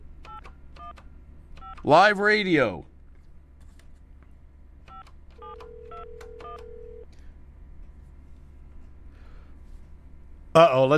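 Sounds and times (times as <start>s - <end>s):
low hum: 0.0s - 10.9s
speech: 1.8s - 2.9s, 10.6s - 10.9s
telephone keypad dialing tones: 4.9s - 7.0s.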